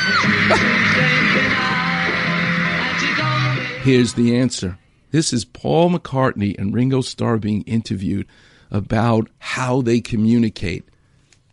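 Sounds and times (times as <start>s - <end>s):
concert crowd of women screaming: 0.0s - 3.4s
speech: 0.1s - 1.8s, 3.8s - 10.9s.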